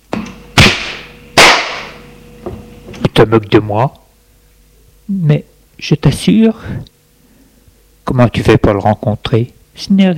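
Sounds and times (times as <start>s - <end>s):
slap across the face: 0.6s - 1.9s
speech: 3.2s - 4.0s, 5.1s - 6.9s, 8.1s - 10.1s.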